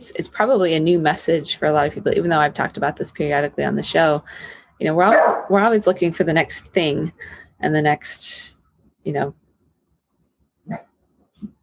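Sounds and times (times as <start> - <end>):
speech: 0.2 - 9.4, 10.7 - 11.6
dog barking: 5.1 - 5.5.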